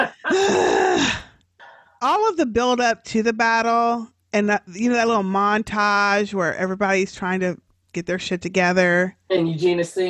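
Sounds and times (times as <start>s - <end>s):
speech: 0.0s - 1.1s, 2.0s - 10.0s
voice imitating heavy breathing with a groaning gasping exhale: 0.0s - 1.8s.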